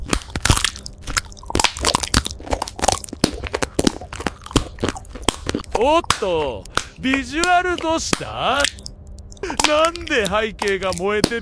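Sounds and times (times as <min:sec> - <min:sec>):
crunchy bites and chewing of Minecraft-style food: 0:00.0 - 0:11.4
speech: 0:05.8 - 0:08.8, 0:09.5 - 0:11.4.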